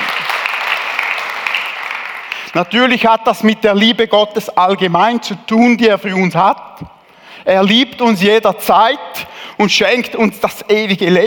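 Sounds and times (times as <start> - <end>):
audience clapping: 0.0 - 2.6
speech: 2.5 - 11.2.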